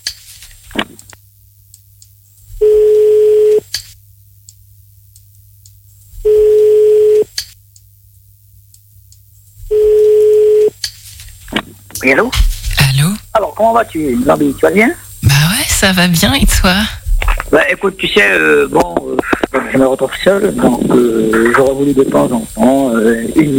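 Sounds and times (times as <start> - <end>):
faint constant low hum: 0.7 - 23.5
telephone ringback tones while a number is redialed: 6.3 - 7.2, 9.7 - 10.7
speech: 12.0 - 12.5, 13.6 - 15.0, 15.8 - 17.0, 17.5 - 23.5.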